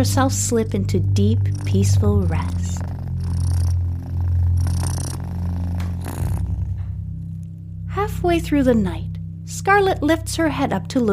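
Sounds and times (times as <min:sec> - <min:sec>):
speech: 0:00.0 - 0:02.9, 0:08.1 - 0:11.1
cat purring: 0:00.0 - 0:07.8.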